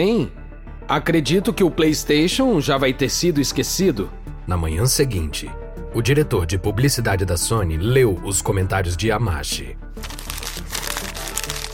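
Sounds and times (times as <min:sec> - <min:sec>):
speech: 0:00.0 - 0:10.2
newspaper being angrily crumpled: 0:10.0 - 0:11.7.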